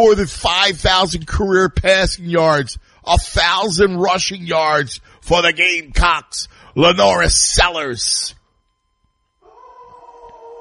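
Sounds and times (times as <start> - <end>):
speech: 0.0 - 8.4
dog howling: 9.4 - 10.5.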